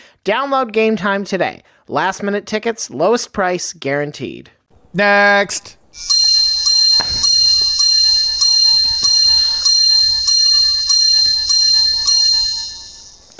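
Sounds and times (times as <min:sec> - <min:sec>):
speech: 0:00.2 - 0:06.2
bright bell chimes: 0:06.0 - 0:13.3.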